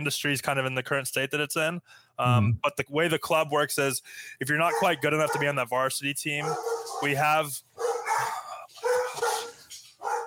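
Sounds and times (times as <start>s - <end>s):
speech: 0.0s - 8.4s
male dog barking: 4.7s - 5.5s, 6.4s - 7.2s, 7.8s - 10.2s.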